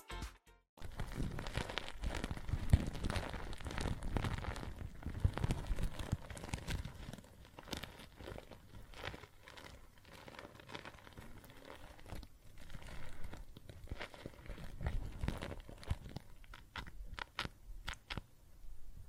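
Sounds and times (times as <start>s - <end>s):
soap foam fizzing and crackling with tiny pops: 0.8s - 18.3s
sharp clicks and bubbly crunches: 0.8s - 18.4s.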